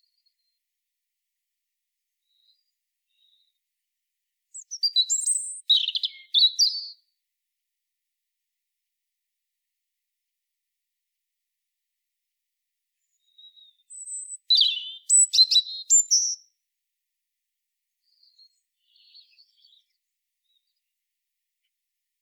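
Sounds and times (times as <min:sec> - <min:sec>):
European robin Erithacus rubecula singing: 0:04.5 - 0:07.1, 0:13.0 - 0:16.6, 0:18.0 - 0:20.9.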